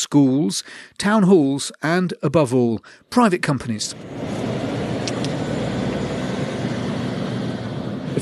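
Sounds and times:
speech: 0:00.1 - 0:04.7
heavy lorries rumbling out of a logistics company depot: 0:03.9 - 0:08.2.

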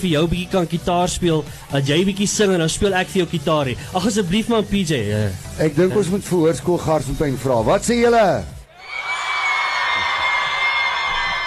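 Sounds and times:
speech: 0:00.0 - 0:08.6
large school crowd shouting and cheering: 0:08.7 - 0:11.4.

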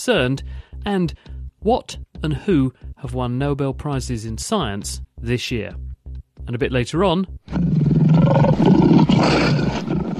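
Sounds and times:
speech: 0:00.0 - 0:10.0
lion roaring on the South African savannah: 0:07.5 - 0:10.1.

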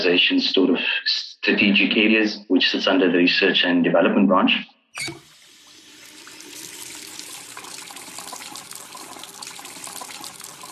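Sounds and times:
speech: 0:00.0 - 0:05.2
water running from a tap into a sink: 0:05.0 - 0:10.7.

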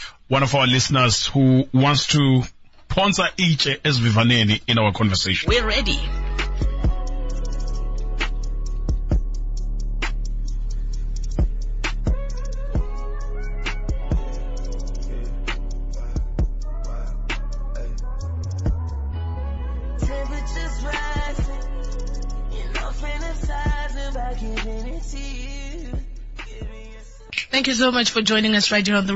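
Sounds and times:
speech: 0:00.3 - 0:06.2, 0:27.8 - 0:29.1
song with heavy bass line and dense layered instrumentation: 0:05.5 - 0:27.3.

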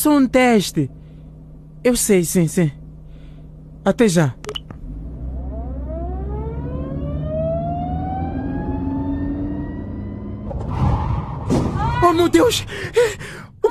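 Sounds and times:
speech: 0:00.0 - 0:01.0, 0:01.8 - 0:02.8, 0:03.8 - 0:04.4, 0:12.2 - 0:13.7
car engine whining as it speeds up: 0:04.7 - 0:11.4.

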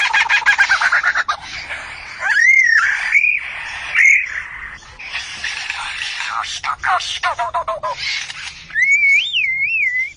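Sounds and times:
greater coucal singing: 0:00.0 - 0:10.1.

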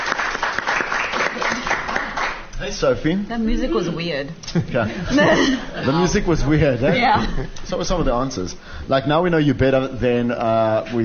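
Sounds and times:
round of applause from a crowd: 0:00.0 - 0:02.5
speech: 0:02.7 - 0:11.0
laughter: 0:04.5 - 0:07.6.

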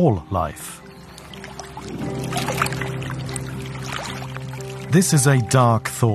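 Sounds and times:
speech: 0:00.0 - 0:00.8, 0:01.8 - 0:02.7, 0:04.9 - 0:06.1
boat motor hum on lagoon water: 0:00.8 - 0:05.4
water splashing and lapping at the boat hull: 0:00.9 - 0:05.4.

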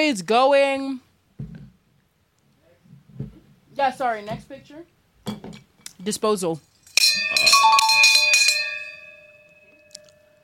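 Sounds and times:
speech: 0:00.0 - 0:01.0, 0:03.8 - 0:08.8
small desk bell struck rapidly: 0:07.0 - 0:10.4.

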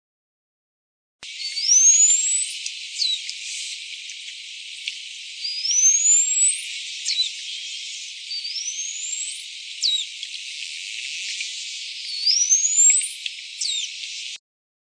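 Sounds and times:
bottlenose dolphin whistles off the Namibian coastline near Walvis Bay: 0:01.2 - 0:03.9, 0:05.4 - 0:10.2, 0:11.9 - 0:14.2
steady hiss: 0:01.3 - 0:14.4.

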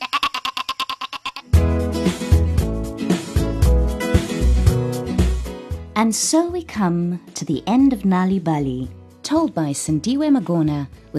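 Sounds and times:
goat bleating: 0:00.0 - 0:01.6
upbeat music with a heavy bass line: 0:01.6 - 0:05.9
speech: 0:06.0 - 0:11.1.

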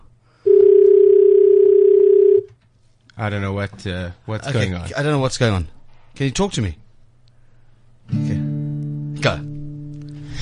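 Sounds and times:
telephone dial tone while placing a call: 0:00.5 - 0:02.5
speech: 0:03.2 - 0:06.8, 0:09.2 - 0:09.5.

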